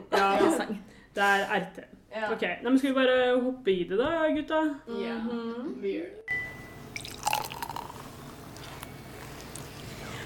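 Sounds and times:
speech: 0.2 - 6.3
carbonated drink fizzing in a glass: 6.9 - 8.7
faint pouring: 7.0 - 8.7.

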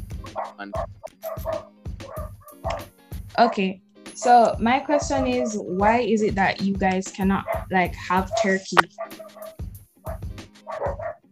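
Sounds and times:
dogs yipping: 0.2 - 3.6, 7.4 - 11.2
dogs barking: 0.2 - 5.7, 7.4 - 11.3
speech: 0.4 - 1.8, 2.6 - 9.1.

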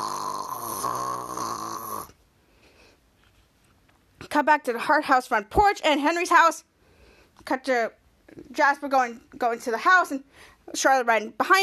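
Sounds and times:
long loud nasal snore: 0.0 - 2.2
speech: 4.4 - 6.7, 7.4 - 11.6.

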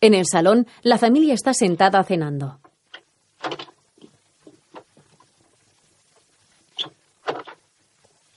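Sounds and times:
speech: 0.0 - 2.7
front door being opened: 3.4 - 3.7
front door banging: 3.4 - 3.8.

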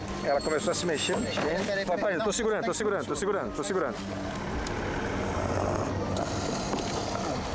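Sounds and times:
speech: 0.2 - 4.8
pickup truck low engine drone heard from inside the cab: 3.4 - 7.5.

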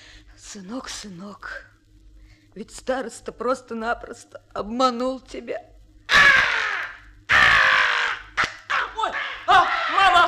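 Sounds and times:
speech: 0.5 - 1.7, 2.6 - 5.7
crow cawing: 6.1 - 10.2.

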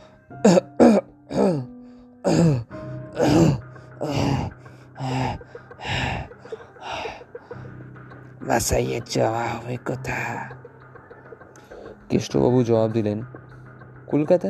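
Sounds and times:
man clearing his throat: 0.4 - 1.7, 2.3 - 4.5
man coughing harshly: 0.4 - 1.7, 2.3 - 4.6
speech: 0.4 - 1.7, 8.6 - 10.7, 12.1 - 13.4, 14.1 - 14.4.

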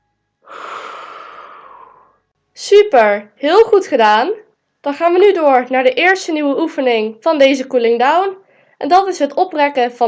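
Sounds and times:
person exhaling during back-rounding exercise: 0.4 - 2.2
speech: 2.6 - 10.0.

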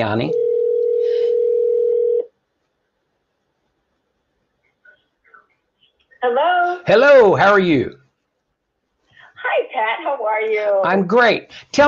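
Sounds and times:
speech: 0.0 - 0.4, 6.2 - 8.0, 9.5 - 11.8
telephone dial tone: 0.3 - 2.3.

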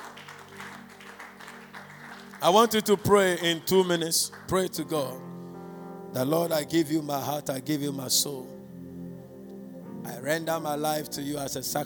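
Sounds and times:
audience clapping in a steady rhythmic beat: 0.0 - 5.1
speech: 2.4 - 5.3, 6.1 - 8.6, 10.1 - 11.8.

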